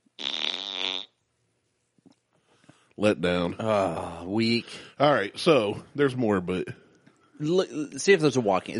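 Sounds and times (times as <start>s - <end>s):
loud buzzy fart sound effect: 0.0s - 1.2s
speech: 3.0s - 6.8s, 7.4s - 8.7s.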